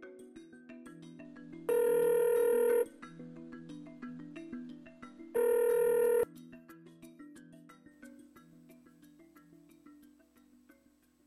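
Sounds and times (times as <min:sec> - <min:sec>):
ringback tone of an outgoing phone call: 0:01.7 - 0:02.9, 0:05.4 - 0:06.3.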